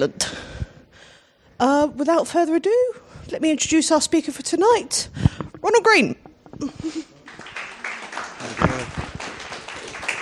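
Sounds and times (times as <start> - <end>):
speech: 0.0 - 0.4, 1.6 - 7.1
audience clapping: 7.2 - 10.2.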